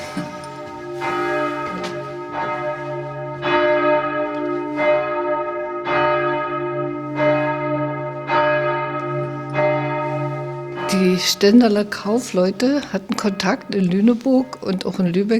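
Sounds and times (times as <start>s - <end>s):
church tower bells ringing: 0.0s - 15.3s
speech: 11.2s - 15.3s.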